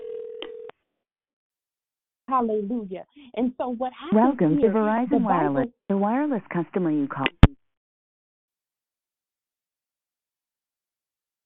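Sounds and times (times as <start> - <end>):
electronic telephone dialing tone from an unmuted phone: 0.0 - 0.7
speech: 2.3 - 7.4.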